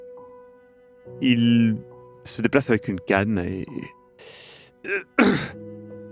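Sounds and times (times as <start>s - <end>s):
speech: 1.1s - 6.1s
person coughing: 4.9s - 6.1s.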